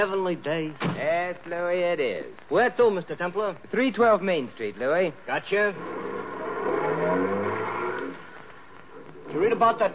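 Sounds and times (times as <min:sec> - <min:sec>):
speech: 0:00.0 - 0:06.1, 0:07.0 - 0:07.5, 0:09.3 - 0:09.9
taxi cab engine revving and pulling away: 0:05.8 - 0:08.5.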